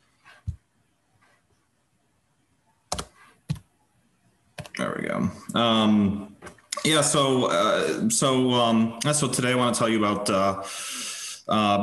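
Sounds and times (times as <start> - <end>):
computer keyboard key presses: 2.9 - 3.7
speech: 5.0 - 11.8.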